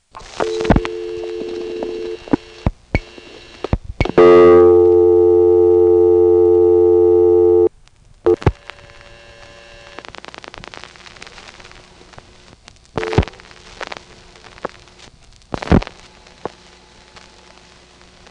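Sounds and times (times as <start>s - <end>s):
telephone exchange local supervision test tone: 0.2s - 10.0s.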